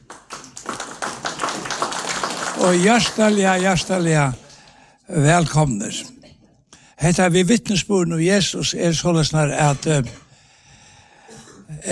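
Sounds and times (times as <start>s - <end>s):
audience at a Christian gathering clapping: 0.0s - 4.8s
speech: 2.6s - 4.4s, 5.1s - 6.0s, 7.0s - 10.2s.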